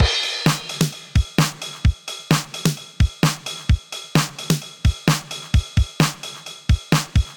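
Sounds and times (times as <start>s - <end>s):
drum machine groove: 0.0s - 7.3s.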